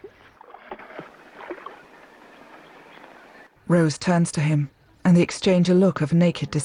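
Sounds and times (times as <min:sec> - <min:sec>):
river water sloshing and gurgling: 0:00.0 - 0:03.5
small boat stuck in a shallow river scraping forward: 0:00.0 - 0:03.5
speech: 0:03.7 - 0:06.6.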